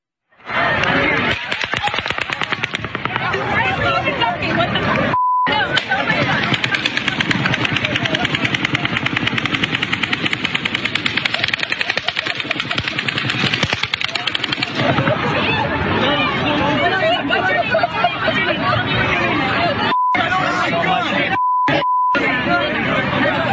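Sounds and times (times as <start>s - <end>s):
hubbub of voices: 0.3s - 23.5s
laughter: 0.5s - 23.5s
automatic gunfire bursts from multiple shooters at a mass shooting: 1.3s - 3.3s, 5.8s - 14.9s.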